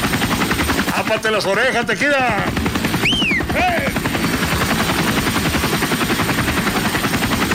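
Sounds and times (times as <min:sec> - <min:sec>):
helicopter passing overhead with rotor thumping: 0:00.0 - 0:07.5
speech: 0:01.1 - 0:02.6, 0:03.6 - 0:04.0
brief high whining tones: 0:02.8 - 0:04.4.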